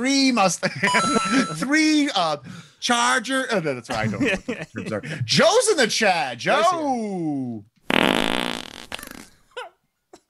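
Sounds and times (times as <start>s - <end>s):
speech: 0.0s - 7.7s
laughter: 0.6s - 1.6s, 3.9s - 5.2s
loud long sputtering fart: 7.9s - 9.5s.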